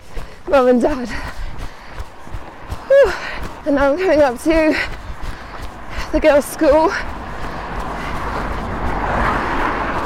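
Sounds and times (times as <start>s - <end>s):
road traffic roar: 0.0s - 10.0s
speech: 0.5s - 1.4s, 3.6s - 5.0s, 6.1s - 7.2s
car passing by: 4.9s - 10.0s.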